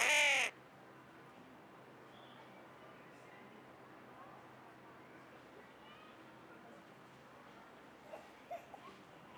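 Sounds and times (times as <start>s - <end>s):
carrion crow cawing: 0.0s - 0.5s.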